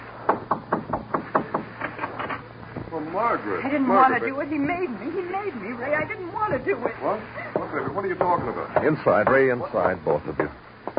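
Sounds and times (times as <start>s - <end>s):
sharp knocks on a wooden door: 0.3s - 1.7s, 7.6s - 10.9s
speech: 3.1s - 10.7s.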